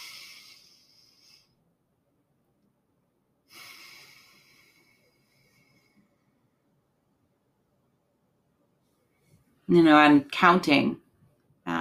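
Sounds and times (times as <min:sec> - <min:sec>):
slow paced breathing in a relaxation exercise: 0:00.0 - 0:01.8, 0:03.4 - 0:06.8
speech: 0:09.7 - 0:11.0.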